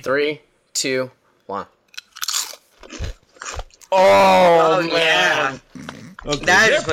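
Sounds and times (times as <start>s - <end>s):
speech: 0.0s - 1.8s, 3.9s - 5.6s, 6.2s - 6.9s
person biting into seasoned garlic-flavored corn chips: 1.9s - 4.0s
person making a loud drawn-out vocal exclamation: 3.9s - 5.6s.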